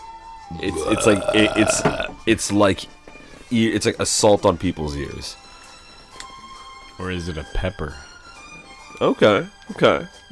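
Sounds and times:
speech: 0.5s - 5.4s, 7.0s - 8.1s, 9.0s - 10.3s
long croaky burp: 0.6s - 2.2s.

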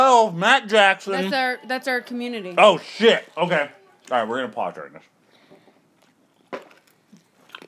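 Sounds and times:
speech: 0.2s - 5.1s
chewing Skittles candy: 5.9s - 7.6s.

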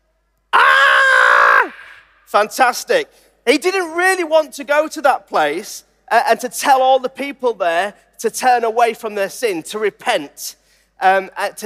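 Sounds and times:
person screaming in fright: 0.6s - 2.2s
speech: 2.3s - 11.6s.

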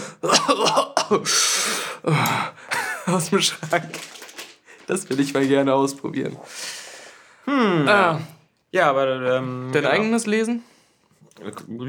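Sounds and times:
person imitating coughing: 0.2s - 1.3s
speech: 0.2s - 4.2s, 4.9s - 6.9s, 7.5s - 10.7s, 11.3s - 11.8s
laughter: 2.1s - 4.1s.

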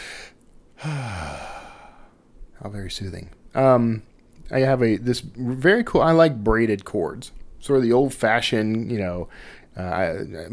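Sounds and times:
out-of-breath person taking a deep breath: 0.0s - 2.2s, 9.3s - 9.7s
speech: 2.6s - 10.5s.

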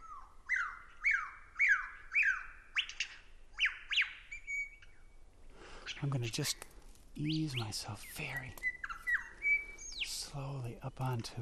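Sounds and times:
bird shrieking alarm calls: 0.0s - 5.0s, 7.5s - 10.1s
speech: 6.0s - 8.7s, 10.3s - 11.3s.

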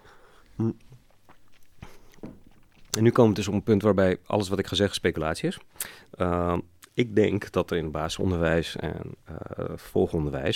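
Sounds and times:
person sipping water: 0.3s - 3.0s
soft swallowing or glass-handling sounds: 0.5s - 3.0s
speech: 0.6s - 1.0s, 3.0s - 10.5s.

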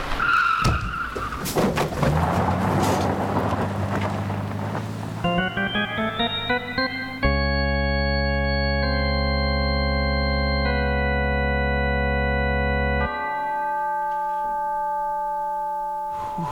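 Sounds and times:
car skidding with tires squealing: 0.0s - 5.2s
steady blaring tone: 5.2s - 16.5s.

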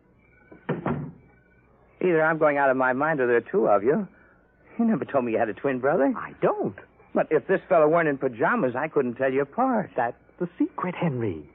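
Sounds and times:
door latch settling: 0.5s - 1.2s
wooden door swinging shut: 0.5s - 1.3s
speech: 2.0s - 4.2s, 4.8s - 11.5s.

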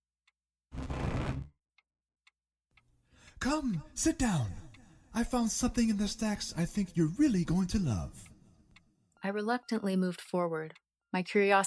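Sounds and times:
loud burst of broadband noise: 0.8s - 1.5s
wall clock ticking: 2.2s - 8.8s
speech: 3.4s - 4.6s, 5.2s - 8.3s, 9.2s - 11.6s.

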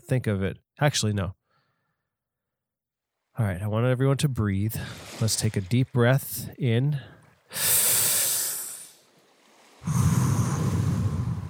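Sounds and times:
speech: 0.1s - 1.4s, 3.4s - 7.8s
ocean waves washing ashore: 4.7s - 11.4s.

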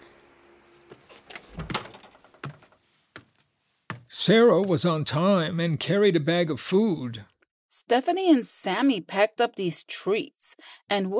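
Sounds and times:
front door opening and closing: 0.8s - 2.9s
speech: 4.2s - 11.1s.

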